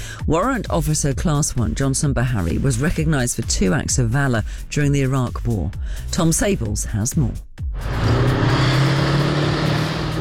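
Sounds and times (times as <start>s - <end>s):
speech: 0.3s - 8.3s
old Warrior armoured vehicle engine rumble driving laps around an arena: 7.8s - 10.1s.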